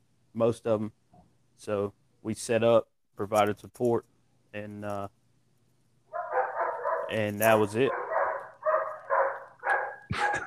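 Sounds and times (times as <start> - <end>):
speech: 0.4 - 1.0, 1.6 - 5.2, 7.1 - 8.0
police dogs barking during an apprehension operation: 6.1 - 10.4.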